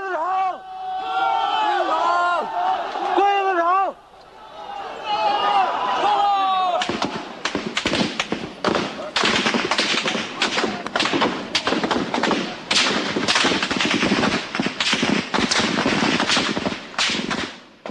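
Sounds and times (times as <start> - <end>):
crowd of student protesters shouting and jeering at soldiers in Tiananmen Square: 0.0 - 7.4
soldiers' gunfire bursts in Tiananmen Square: 6.8 - 17.8.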